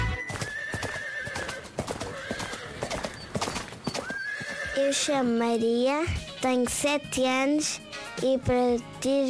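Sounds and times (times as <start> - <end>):
horse hooves clip-clopping in a riding arena: 0.1 - 6.8
horse whinnying loudly: 0.2 - 5.1
speech: 4.8 - 9.2.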